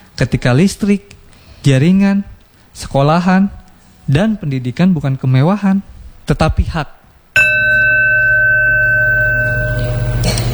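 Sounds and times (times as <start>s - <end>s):
speech: 0.2s - 7.0s
school bell ringing for the start of class: 7.4s - 10.5s.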